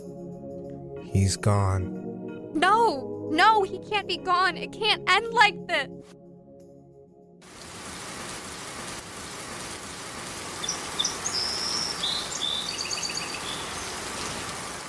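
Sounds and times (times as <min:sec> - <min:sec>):
speech: 0:01.1 - 0:06.2
steady rain with dense broadband patter: 0:07.5 - 0:14.8
faint high bird chirps: 0:10.6 - 0:14.3.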